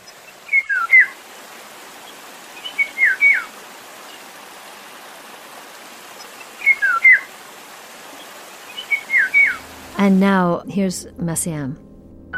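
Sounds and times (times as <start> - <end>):
faint steady hiss: 0.0 - 11.8
Eurasian golden oriole whistled song: 0.5 - 1.2, 2.6 - 3.5, 6.5 - 7.3, 8.7 - 9.6
speech: 10.0 - 11.9.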